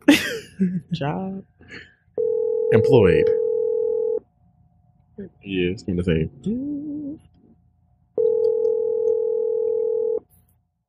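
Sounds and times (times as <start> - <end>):
speech: 0.6 - 1.9, 2.7 - 3.5, 5.2 - 7.3
ringback tone of an outgoing phone call: 2.2 - 4.2, 8.2 - 10.2.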